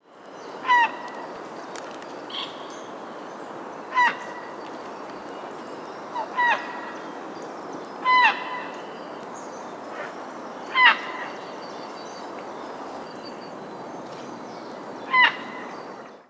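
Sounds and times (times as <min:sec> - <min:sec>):
Ardea cinerea: 0:00.4 - 0:01.6, 0:02.3 - 0:11.7, 0:15.1 - 0:15.8.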